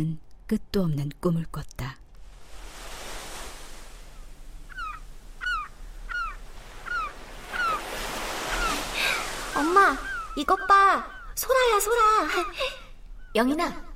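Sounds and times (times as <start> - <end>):
speech: 0.0 - 2.0, 9.9 - 13.9
ocean waves washing: 2.2 - 13.2
short repeated bird calls chirping: 4.1 - 13.6.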